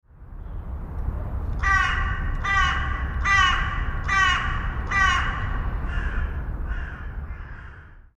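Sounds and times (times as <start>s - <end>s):
low background noise: 0.0s - 8.1s
carrion crow Corvus corone cawing: 1.6s - 8.1s.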